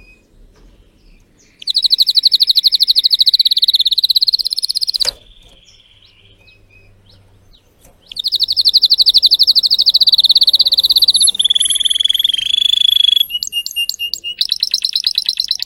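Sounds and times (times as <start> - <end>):
Spanish Timbrado canary trilling: 1.4 - 15.6
low hum: 5.1 - 13.5.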